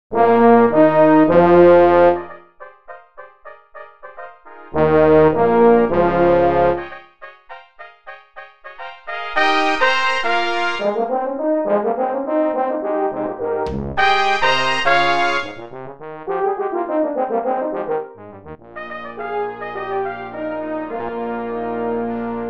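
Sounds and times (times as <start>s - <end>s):
festive short brass fanfare: 0.1s - 22.4s.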